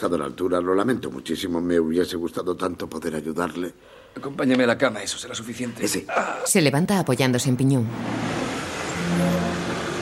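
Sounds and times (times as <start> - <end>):
speech: 0.0 - 8.5
faint road noise: 7.8 - 10.0
car engine humming while pulling up and parking in front of an entrance gate: 8.0 - 10.0.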